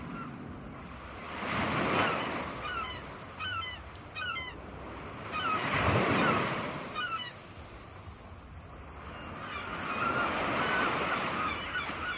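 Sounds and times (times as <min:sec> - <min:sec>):
ocean surf with waves breaking: 0:00.0 - 0:12.1
seagulls calling over the ocean: 0:01.9 - 0:04.6, 0:05.2 - 0:07.4, 0:09.0 - 0:12.1.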